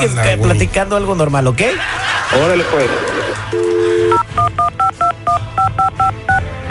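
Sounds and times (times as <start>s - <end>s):
speech: 0.0s - 3.6s
laughter: 1.6s - 4.1s
DTMF touch-tone beeps as a phone number is dialed: 3.6s - 6.6s.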